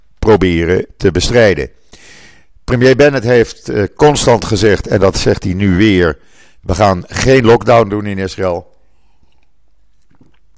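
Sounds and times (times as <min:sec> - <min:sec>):
speech: 0:00.2 - 0:01.8, 0:02.7 - 0:08.7
person taking a sip of water: 0:08.8 - 0:10.5
faint swallow: 0:09.2 - 0:10.5.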